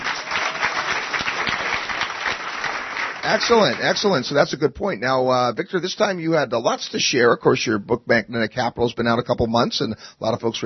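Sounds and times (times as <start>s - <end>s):
audience clapping in sustained applause: 0.0s - 4.2s
speech: 3.3s - 10.6s.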